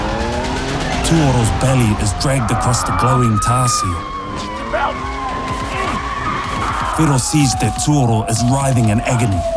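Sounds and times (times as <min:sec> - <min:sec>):
low rumbling car engine: 0:00.0 - 0:05.3
car tires skidding across a road surface: 0:00.0 - 0:07.6
speech: 0:01.1 - 0:05.7, 0:07.0 - 0:09.5.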